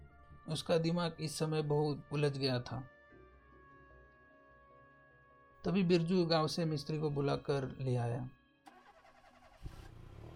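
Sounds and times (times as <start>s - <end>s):
speech: 0.5s - 2.9s, 5.6s - 8.4s
car engine cranking with starter whir and starting: 8.7s - 10.3s.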